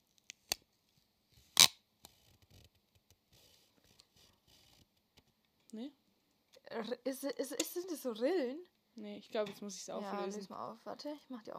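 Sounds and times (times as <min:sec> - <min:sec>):
adhesive tape ripping snap from dispenser: 0:00.2 - 0:00.6, 0:01.5 - 0:02.2
speech: 0:05.8 - 0:06.0, 0:06.8 - 0:11.5.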